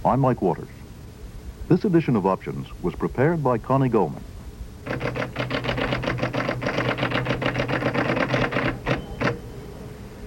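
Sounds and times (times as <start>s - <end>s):
speech: 0.0s - 0.8s, 1.7s - 5.1s
low mechanical hum: 0.0s - 10.2s
typewriter keystrokes clattering: 4.9s - 9.4s.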